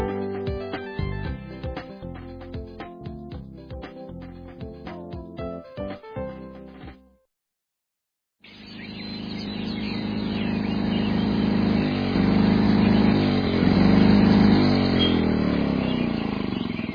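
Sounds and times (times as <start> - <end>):
small engine droning: 8.4 - 16.9.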